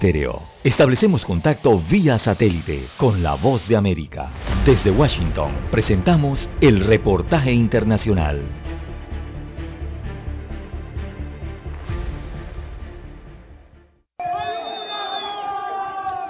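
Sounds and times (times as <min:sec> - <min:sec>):
speech: 0:00.0 - 0:08.7
dense pulsing loud sound: 0:04.3 - 0:10.1
crowd of prisoners shouting and crying for help after a riot at the Turi detention centre: 0:14.2 - 0:16.2.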